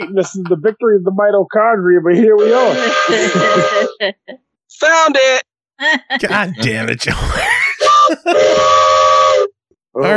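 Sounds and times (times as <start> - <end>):
laughter: 0.0 - 0.9, 2.1 - 4.4, 5.8 - 8.6
speech: 0.0 - 8.8, 10.0 - 10.1
train whistle blowing: 2.4 - 3.9, 7.8 - 9.5.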